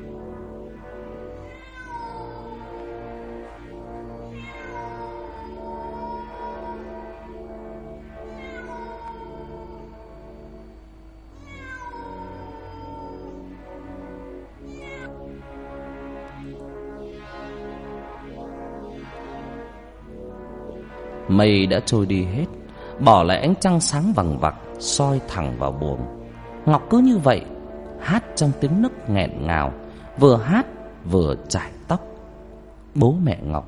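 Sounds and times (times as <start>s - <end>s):
cat meowing in long wailing cries: 1.3s - 2.9s, 4.2s - 7.4s, 8.2s - 10.0s, 11.3s - 13.5s, 14.7s - 15.2s
speech: 21.3s - 32.1s, 33.0s - 33.6s.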